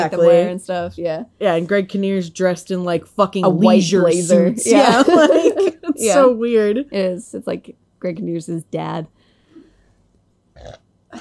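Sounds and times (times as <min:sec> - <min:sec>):
speech: 0:00.0 - 0:09.2, 0:10.6 - 0:11.1
laughter: 0:04.7 - 0:06.1
person burping: 0:10.6 - 0:11.1.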